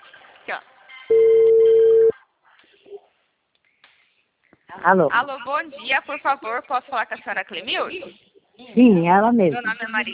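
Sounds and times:
speech: 0:00.5 - 0:01.2, 0:04.7 - 0:10.1
ringing tone of an outgoing phone call: 0:01.1 - 0:02.1.

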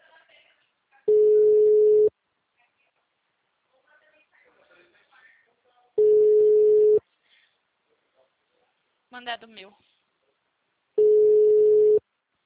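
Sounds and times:
ringback tone of an unanswered phone call: 0:01.1 - 0:02.1, 0:06.0 - 0:07.0, 0:11.0 - 0:12.0
speech: 0:09.2 - 0:09.9.

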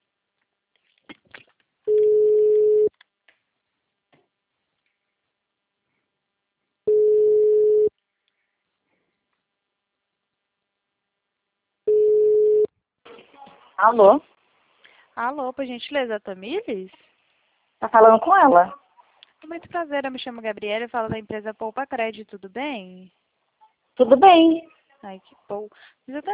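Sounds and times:
ringback tone of an outgoing telephone call: 0:01.9 - 0:02.9, 0:06.9 - 0:07.9, 0:11.9 - 0:12.7
speech: 0:13.8 - 0:14.3, 0:15.2 - 0:17.1, 0:17.8 - 0:18.8, 0:19.4 - 0:23.2, 0:24.0 - 0:26.3.

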